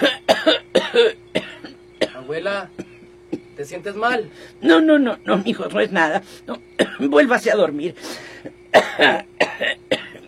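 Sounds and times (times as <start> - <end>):
elderly woman coughing harsh raspy coughs: 0.0 - 3.6, 6.5 - 7.1, 8.3 - 10.2
speech: 3.6 - 9.4.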